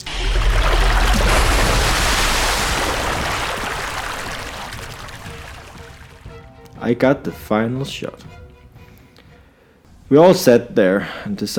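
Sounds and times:
water gushing and pouring over a ledge: 0.0 - 6.3
speech: 6.9 - 8.4, 10.1 - 11.5.

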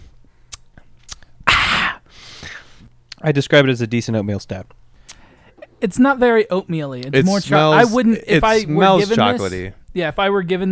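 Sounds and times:
lip clicks: 0.5 - 1.3, 5.0 - 5.2
speech: 3.2 - 4.8, 5.8 - 10.7.

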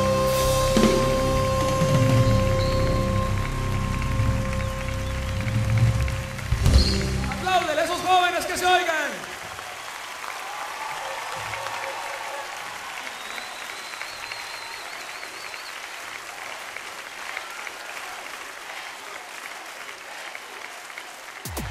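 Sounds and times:
whistles from the crowd: 0.0 - 7.4, 12.3 - 16.2
large audience applauding and cheering: 0.0 - 21.6.

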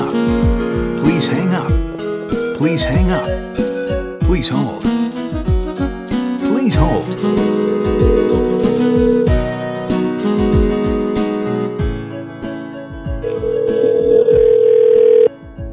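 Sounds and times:
rhythmic low thumping beat: 0.1 - 4.5, 5.2 - 12.2, 12.9 - 14.6, 15.4 - 15.7
speech: 2.6 - 3.7, 4.3 - 4.9, 6.7 - 8.4
telephone ringing with electronic tones: 13.2 - 15.3.

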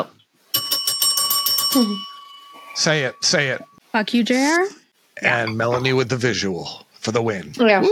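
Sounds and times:
bell ringing: 0.5 - 3.8
speech: 1.7 - 2.1, 2.8 - 7.9.

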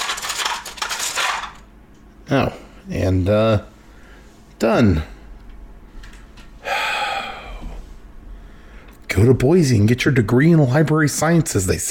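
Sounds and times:
small hard objects clattering and clinking together: 0.0 - 1.7
speech: 2.3 - 3.7, 4.6 - 5.1, 9.2 - 11.8.

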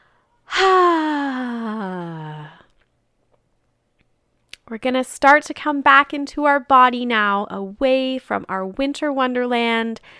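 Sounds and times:
loud voiced exhale in a guided relaxation breathing exercise: 0.5 - 2.7
speech: 4.7 - 10.1.

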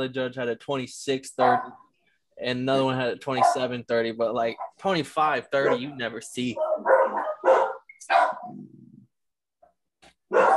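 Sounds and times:
speech: 0.0 - 1.8, 2.4 - 6.7
dog barking: 1.4 - 1.9, 3.4 - 3.7, 5.6 - 8.6, 10.3 - 10.5.

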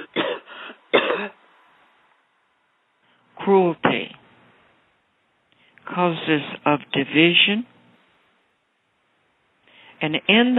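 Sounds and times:
throat clearing and coughing: 0.0 - 1.4
speech: 3.5 - 4.2, 6.0 - 7.7, 10.0 - 10.5.

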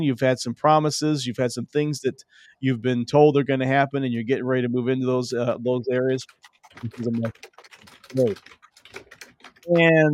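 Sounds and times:
speech: 0.0 - 8.6, 9.6 - 10.1
keyboard typing: 5.9 - 10.0.

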